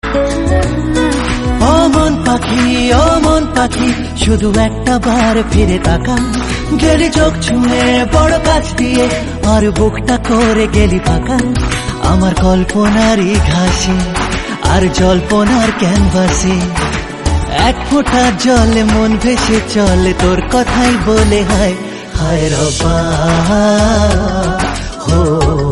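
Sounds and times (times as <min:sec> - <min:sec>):
Indian Bangla song: 0:00.0 - 0:25.7.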